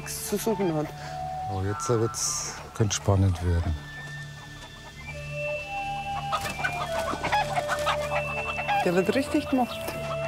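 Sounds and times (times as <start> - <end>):
young roosters clucking and squawking in a standoff: 0.0 - 1.0, 3.0 - 10.2
speech: 0.1 - 3.9, 8.8 - 9.9.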